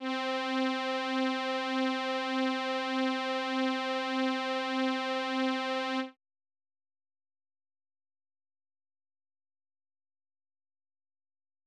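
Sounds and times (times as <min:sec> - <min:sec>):
keyboard chords: 0:00.0 - 0:06.1.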